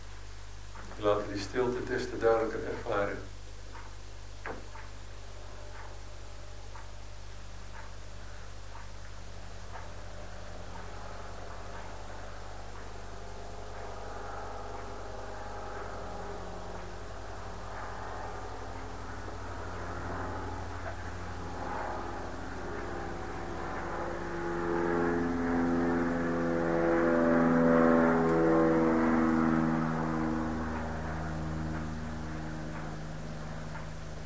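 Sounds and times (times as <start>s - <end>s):
low hum: 0.0s - 34.2s
speech: 1.0s - 3.4s
clock ticking: 3.7s - 4.0s, 4.7s - 5.0s, 5.7s - 6.0s, 7.7s - 8.0s, 8.7s - 10.0s, 10.7s - 12.0s
propeller airplane droning overhead: 9.2s - 34.2s.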